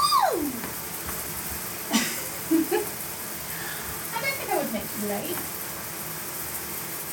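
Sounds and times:
person exclaiming: 0:00.0 - 0:00.7
shower water running: 0:00.0 - 0:07.1
speech: 0:05.0 - 0:05.6.

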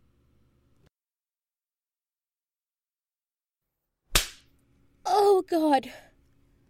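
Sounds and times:
hand slapping skin: 0:04.1 - 0:04.5
speech: 0:05.2 - 0:06.1.

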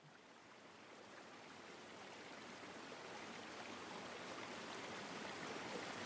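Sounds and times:
stream water flowing along shoreline: 0:00.0 - 0:06.0.

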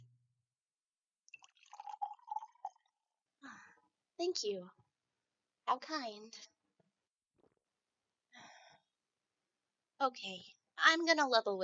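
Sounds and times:
wine being poured into a glass: 0:01.3 - 0:03.0
speech: 0:04.2 - 0:04.8, 0:05.7 - 0:06.5, 0:10.0 - 0:11.6.

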